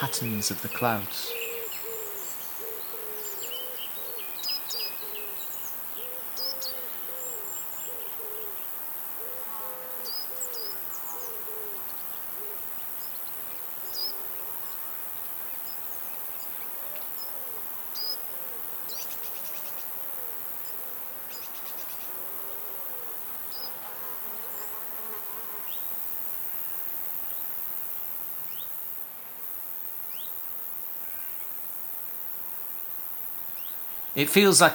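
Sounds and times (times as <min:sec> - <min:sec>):
speech: 0:00.0 - 0:01.4, 0:34.2 - 0:34.7
faint chirps: 0:00.0 - 0:08.3
bird calls: 0:00.0 - 0:08.5
insects buzzing and singing in a meadow: 0:00.0 - 0:34.7.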